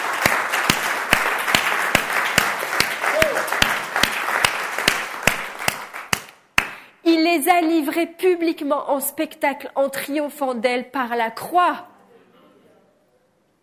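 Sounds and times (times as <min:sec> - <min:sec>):
dense wash of scattered claps from a large audience: 0:00.0 - 0:06.8
large audience clapping in rhythmic unison: 0:00.0 - 0:06.9
speech: 0:07.4 - 0:11.9.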